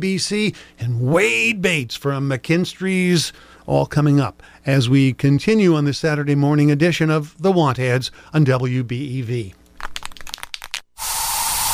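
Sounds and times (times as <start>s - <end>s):
speech: 0.0s - 9.6s
bug spray hissing from an aerosol can in a home: 11.0s - 11.7s.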